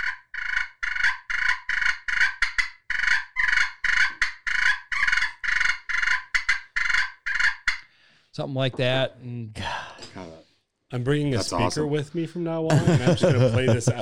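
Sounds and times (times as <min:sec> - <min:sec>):
raspy purring wild turkey fight calls imitated by a hunter: 0:00.0 - 0:07.9
speech: 0:08.4 - 0:14.0
laughter: 0:12.7 - 0:14.0.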